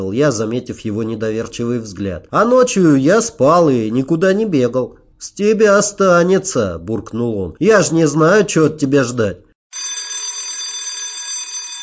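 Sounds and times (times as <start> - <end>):
speech: 0.0 - 9.5
electric school bell ringing: 9.7 - 11.8.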